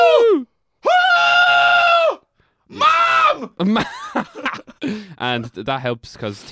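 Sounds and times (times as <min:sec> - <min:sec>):
person screaming: 0:00.0 - 0:03.6
laughter: 0:03.6 - 0:05.5
speech: 0:03.6 - 0:06.5.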